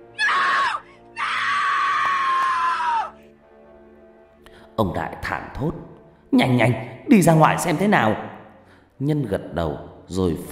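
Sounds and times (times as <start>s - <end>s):
shrill frightened human screaming: 0.2s - 3.2s
speech: 4.8s - 8.3s, 9.0s - 10.5s.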